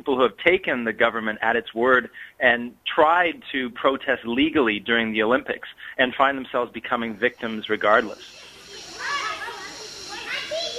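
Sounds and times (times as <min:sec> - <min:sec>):
speech: 0:00.0 - 0:08.4
steady hiss: 0:00.0 - 0:10.7
children playing on exercise equipment in a city park, chattering and shouting: 0:07.4 - 0:10.7.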